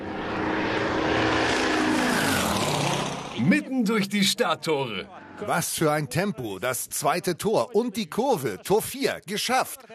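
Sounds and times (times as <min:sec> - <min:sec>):
drone propellers buzzing on a drone racing course: 0:00.0 - 0:03.8
speech: 0:03.4 - 0:09.9.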